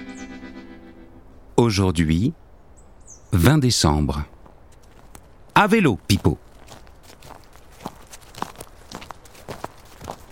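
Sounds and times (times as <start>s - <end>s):
speech: 1.6s - 2.4s, 3.3s - 4.4s, 5.6s - 6.5s
footsteps walking over rustling forest ground: 4.3s - 10.3s.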